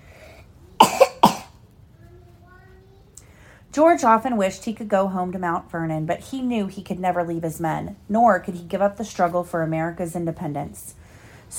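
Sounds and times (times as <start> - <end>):
harsh coughs: 0.8 - 1.6
speech: 3.7 - 11.5.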